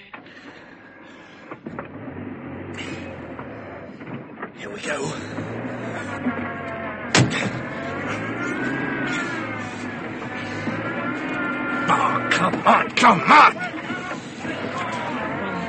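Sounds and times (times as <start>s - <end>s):
cold car engine revving as the car crashes through a gate: 1.2s - 15.6s
speech: 4.8s - 5.5s, 12.7s - 13.6s
laughter: 4.8s - 6.5s, 7.2s - 15.6s
man exclaiming: 11.8s - 15.6s.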